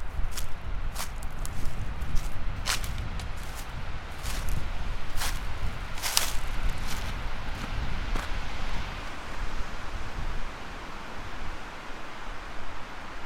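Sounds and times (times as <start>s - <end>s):
footsteps walking along a ditch: 0.0s - 8.8s
constant low rumble of wind: 0.0s - 13.2s.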